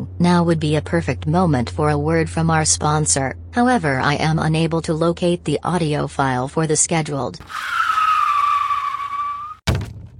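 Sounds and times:
speech: 0:00.2 - 0:08.0
car tires screeching from hard braking: 0:07.4 - 0:09.6
heavy thud: 0:09.7 - 0:10.1.

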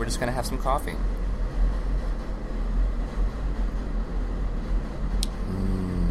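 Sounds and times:
train rumbling past: 0:00.0 - 0:06.0
speech: 0:00.1 - 0:01.2.

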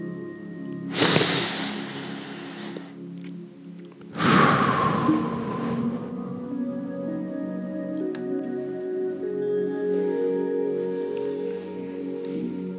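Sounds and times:
faint steady drone: 0:00.0 - 0:12.7
deep breath in and out: 0:00.9 - 0:03.0, 0:04.1 - 0:06.4.

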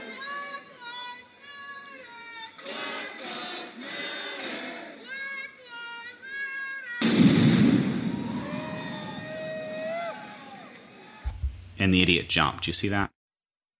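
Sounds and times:
bomb explosion with sharp crack and low rumble: 0:07.0 - 0:09.2
speech: 0:11.8 - 0:13.1.

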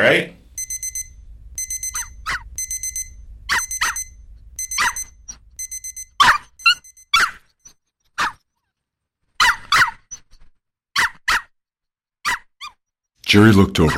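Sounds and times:
speech: 0:00.0 - 0:00.4, 0:13.3 - 0:13.9
low rumble: 0:00.0 - 0:07.0
electronic beeping: 0:00.5 - 0:07.3
small chihuahua doodle barking frantically: 0:06.2 - 0:07.4, 0:08.2 - 0:08.4, 0:09.4 - 0:10.1, 0:11.0 - 0:11.5.

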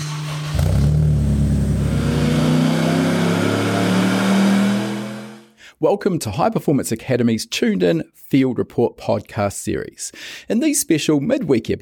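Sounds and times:
quad-rotor rotary engine revving in a tube-frame four-wheel-drive car: 0:00.2 - 0:05.5
speech: 0:05.8 - 0:11.8.

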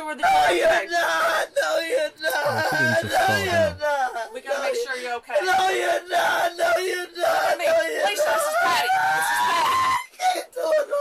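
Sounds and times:
speech: 0:00.1 - 0:10.9
laughter: 0:02.4 - 0:03.8
woman screaming: 0:08.0 - 0:10.9.

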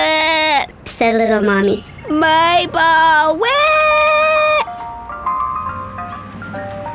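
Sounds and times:
speech: 0:01.0 - 0:03.8
ice cream truck jingle: 0:01.8 - 0:06.9.

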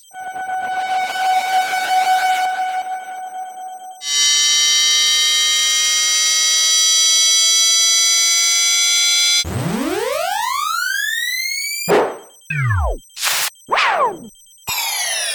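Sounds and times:
wavering electronic tone: 0:00.0 - 0:15.3
quick glitchy chirps, drops and short noise bursts: 0:07.8 - 0:15.3.

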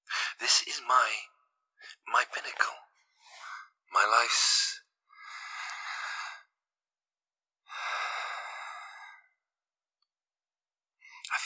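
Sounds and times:
speech: 0:00.4 - 0:02.9, 0:03.9 - 0:04.7
slow soft human breathing: 0:03.1 - 0:03.7, 0:05.1 - 0:06.5, 0:07.7 - 0:09.4.

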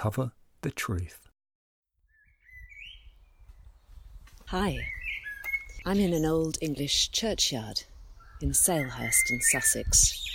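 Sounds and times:
speech: 0:00.0 - 0:01.3, 0:04.5 - 0:05.0, 0:05.8 - 0:10.3
blackbird singing beneath an oak tree in an old English churchyard in Salehurst, Sussex: 0:02.1 - 0:06.6, 0:07.8 - 0:10.3.

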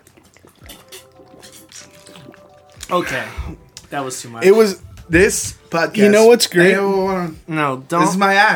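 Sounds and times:
person drinking water with wet gulps: 0:00.0 - 0:03.9
speech: 0:02.9 - 0:08.5.

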